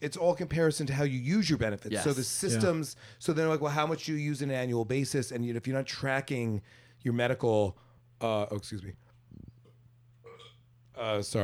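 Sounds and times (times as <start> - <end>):
speech: 0.0 - 9.0, 11.0 - 11.4
low rattling burp: 10.2 - 10.6.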